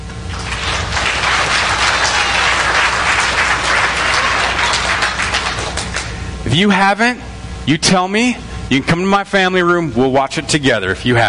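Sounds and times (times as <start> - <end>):
large audience applauding with many hands clapping: 0.1 - 6.2
speech: 6.5 - 11.2.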